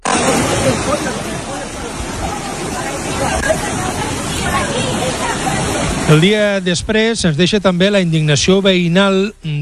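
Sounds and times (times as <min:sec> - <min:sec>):
faint murmur of voices: 0:00.0 - 0:06.6
loud steady roar of rushing floodwater: 0:00.0 - 0:09.0
speech: 0:06.1 - 0:09.6.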